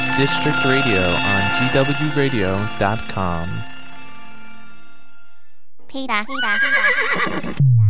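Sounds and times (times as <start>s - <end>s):
speech: 0.2s - 3.7s, 5.9s - 7.7s
horse neighing: 6.4s - 7.6s.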